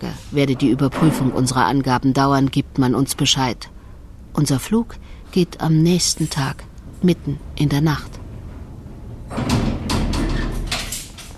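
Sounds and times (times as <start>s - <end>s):
heavy iron door scraping and grinding shut: 0.2s - 1.8s, 6.3s - 11.3s
speech: 0.3s - 3.8s, 4.4s - 8.2s.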